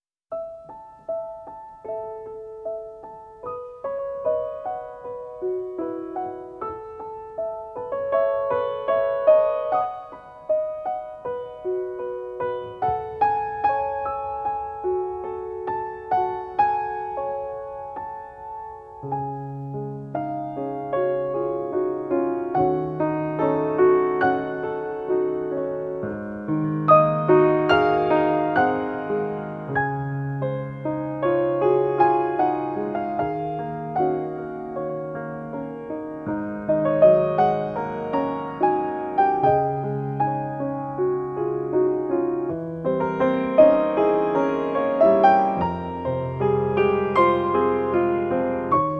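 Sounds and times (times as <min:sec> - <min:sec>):
piano piece: 0:00.3 - 0:48.9.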